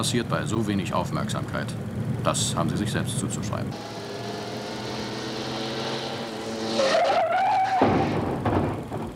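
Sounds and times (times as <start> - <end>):
speech: 0.0 - 4.0
car engine humming: 0.0 - 9.1
tires squealing as a car skids hard: 4.6 - 8.8.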